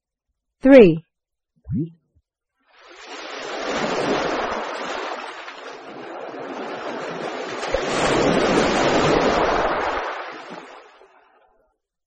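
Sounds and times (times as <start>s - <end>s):
speech: 0.6s - 1.1s, 1.7s - 2.0s
ocean waves: 2.7s - 11.5s.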